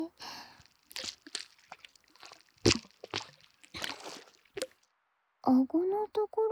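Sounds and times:
thick foam being spread onto a face: 0.0 - 4.8
speech: 5.5 - 6.5.

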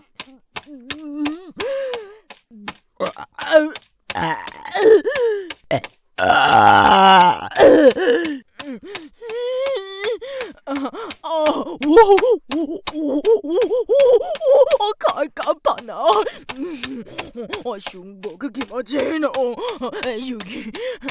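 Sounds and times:
short breathy vocal sounds, gasps and groans from a voice: 0.2 - 21.1
loud drawn-out forceful burp: 5.7 - 8.2
speech: 18.8 - 19.3.

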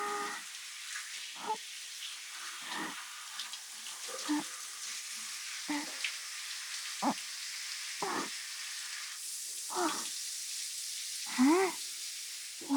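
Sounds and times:
shower water spraying to rinse off foam: 0.0 - 12.7
water splashing as the stream washes over something: 2.3 - 4.6, 5.3 - 9.0, 9.7 - 10.1, 11.3 - 11.8, 12.6 - 12.7.

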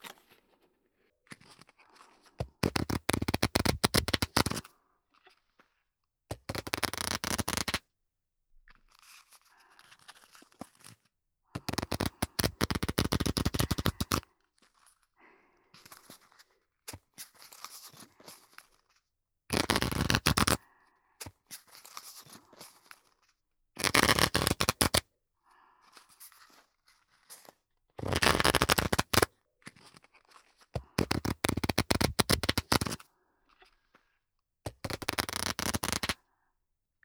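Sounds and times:
deck of playing cards shuffled in performance-style riffles: 2.6 - 4.6, 6.5 - 7.8, 11.7 - 14.2, 19.6 - 20.6, 23.8 - 25.0, 28.1 - 29.3, 31.0 - 33.0, 34.8 - 36.2.

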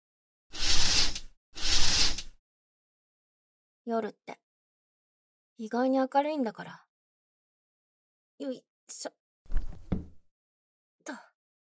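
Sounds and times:
fabric curtains sliding closed along a rail: 0.5 - 2.3
speech: 3.9 - 4.4, 5.6 - 6.8, 8.4 - 9.2, 11.1 - 11.3.

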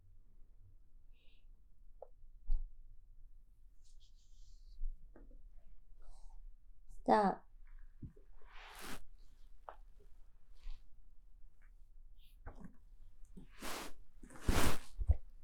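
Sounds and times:
speech: 7.1 - 7.4
rustling and crinkling as someone handles things: 12.2 - 15.4.

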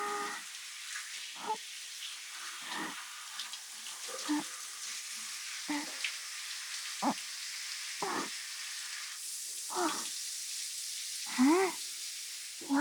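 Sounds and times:
shower water spraying: 0.0 - 12.7.

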